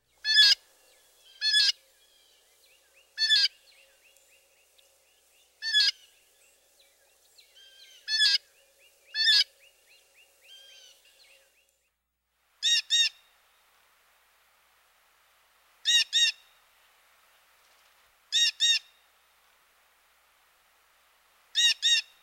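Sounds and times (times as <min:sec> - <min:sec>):
fainter blue jay calls: 0:00.0 - 0:11.7, 0:21.6 - 0:22.2
blue jays giving harsh jay calls: 0:00.2 - 0:02.4, 0:03.0 - 0:04.7, 0:05.6 - 0:06.4, 0:07.5 - 0:11.2, 0:12.6 - 0:13.3, 0:15.8 - 0:16.6, 0:18.3 - 0:19.0, 0:21.5 - 0:22.2.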